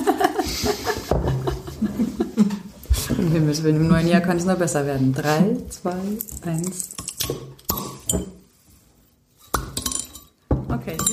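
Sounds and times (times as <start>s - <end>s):
laughter: 0.0s - 2.8s
speech: 0.6s - 0.9s, 3.2s - 7.4s, 8.1s - 8.4s
beer bottles clinking together in a toast: 6.4s - 8.4s, 9.4s - 11.1s.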